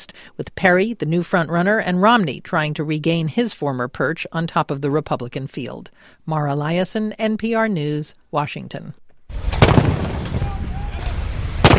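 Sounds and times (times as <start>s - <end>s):
speech: 0.4s - 9.0s
guns firing in salute for a papal arrival in Germany: 9.5s - 10.6s, 11.6s - 11.7s.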